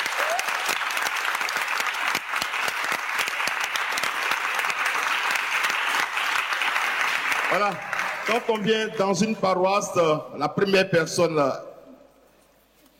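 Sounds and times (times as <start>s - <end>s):
audience applauding a choir in a parish church: 0.0s - 9.2s
speech: 7.5s - 11.7s.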